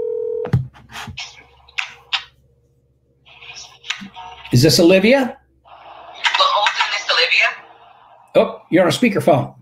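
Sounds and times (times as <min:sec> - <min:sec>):
telephone ringback tone on an outgoing call: 0:00.0 - 0:00.4
faint electrical hum: 0:00.0 - 0:09.5
speech: 0:04.5 - 0:05.4, 0:08.4 - 0:09.5.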